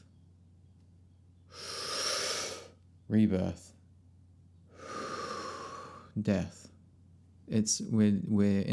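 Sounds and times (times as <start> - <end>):
person inhaling slowly: 1.5 - 2.8, 4.7 - 6.2
speech: 3.1 - 3.8, 6.2 - 6.7, 7.5 - 8.7.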